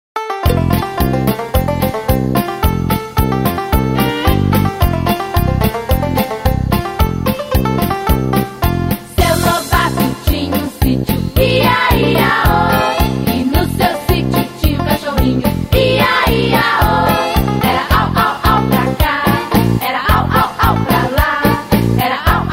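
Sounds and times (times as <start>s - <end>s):
background music: 0.2s - 22.5s.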